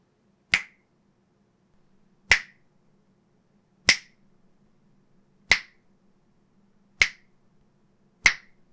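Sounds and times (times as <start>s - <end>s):
finger snaps: 0.5s - 0.8s, 2.3s - 2.6s, 3.9s - 4.2s, 5.5s - 5.8s, 7.0s - 7.3s, 8.2s - 8.7s.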